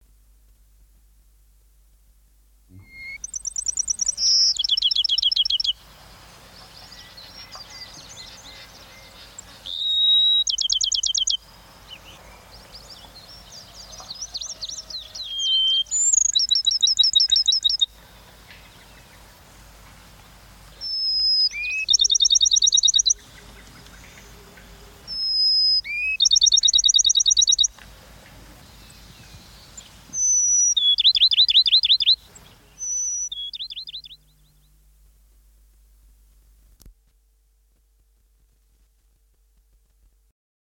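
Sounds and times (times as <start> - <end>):
Bachman's sparrow: 2.7 - 19.5, 20.7 - 27.8, 28.6 - 34.8.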